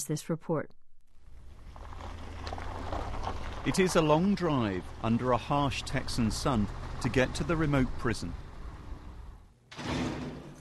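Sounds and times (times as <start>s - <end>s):
speech: 0.0s - 0.8s, 3.6s - 8.4s
thick steel prison door sliding: 9.7s - 10.5s.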